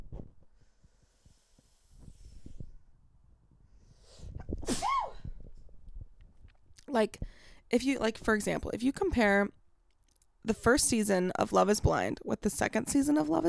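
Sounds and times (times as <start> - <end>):
faint breathing: 0.5 - 2.8, 7.2 - 7.7
loud sneeze: 4.6 - 5.2
speech: 6.9 - 9.5, 10.5 - 13.4.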